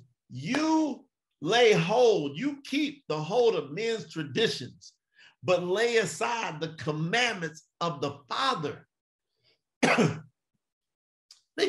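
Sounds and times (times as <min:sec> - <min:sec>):
speech: 0:00.3 - 0:08.9, 0:09.8 - 0:10.3
person coughing: 0:09.8 - 0:10.3.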